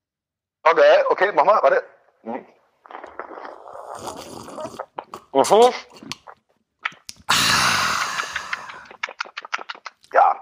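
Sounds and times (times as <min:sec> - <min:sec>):
speech: 0:00.7 - 0:02.6, 0:04.0 - 0:06.2
slurping hot coffee at the microphone: 0:02.8 - 0:09.8.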